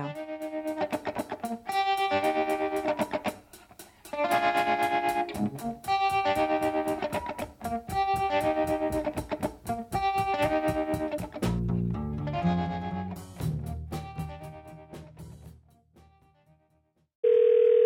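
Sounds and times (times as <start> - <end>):
music: 0.0 - 17.1
loud steady telephone dial tone: 17.2 - 17.8.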